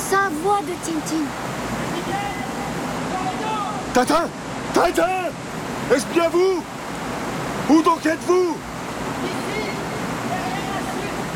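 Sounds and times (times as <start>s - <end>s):
rushing water from a waterfall: 0.0s - 11.3s
speech: 0.4s - 2.4s, 3.9s - 6.7s, 7.7s - 9.4s.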